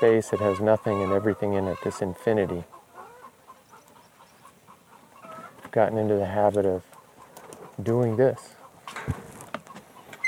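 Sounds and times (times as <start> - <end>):
speech: 0.0 - 2.8, 5.8 - 6.9, 7.8 - 9.2
chicken clucking squawk: 0.0 - 5.7, 6.8 - 9.0, 9.6 - 10.2
faint outdoor noise: 0.0 - 10.2.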